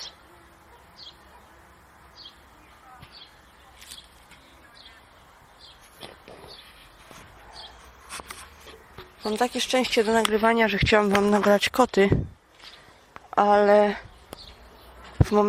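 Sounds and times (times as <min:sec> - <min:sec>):
birds singing outdoors on a fine day: 0:00.0 - 0:15.4
steady low hiss: 0:00.0 - 0:15.4
speech: 0:09.2 - 0:12.4, 0:13.4 - 0:14.1, 0:15.3 - 0:15.4.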